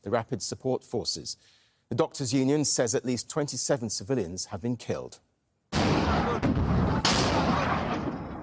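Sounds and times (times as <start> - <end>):
speech: 0.0 - 5.3
booming blasts: 5.7 - 8.4
heavy gunfire: 5.7 - 8.4.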